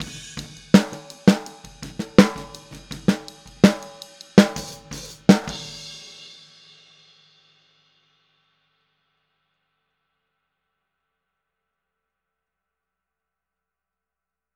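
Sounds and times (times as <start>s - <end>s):
snare drum in a boogaloo outro: 0.0s - 6.1s.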